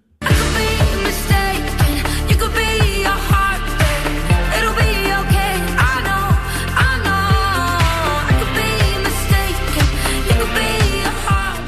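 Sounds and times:
upbeat pop song with female singer, four-on-the-floor beat and bright synths: 0.0s - 11.6s.

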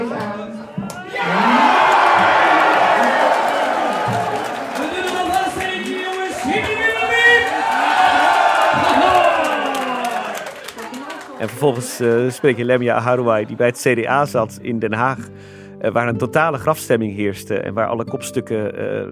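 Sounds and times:
large crowd of party supporters shouting and cheering at an election-night gathering: 0.7s - 13.8s
speech: 11.4s - 19.1s.

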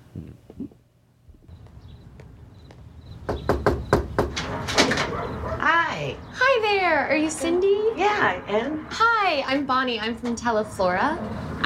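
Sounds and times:
sharp knocks on a front door: 3.2s - 5.0s
speech: 6.0s - 11.6s.

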